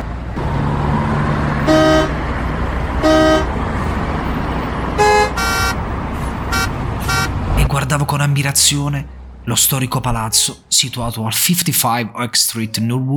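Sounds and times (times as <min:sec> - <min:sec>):
busy city traffic rumbling: 0:00.0 - 0:13.0
car horns honking: 0:01.3 - 0:07.6
speech: 0:08.0 - 0:13.1.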